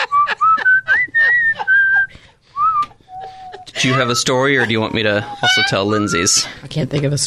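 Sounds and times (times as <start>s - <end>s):
laughter: 0.0s - 2.2s, 2.8s - 6.6s
person whistling a lively tune: 0.0s - 4.3s
speech: 3.8s - 7.2s.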